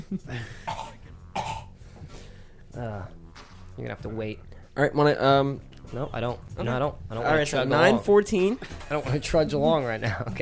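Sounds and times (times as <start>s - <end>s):
speech: 0.1s - 0.8s, 2.8s - 3.2s, 3.8s - 10.3s
harsh hacking cough: 0.3s - 1.8s.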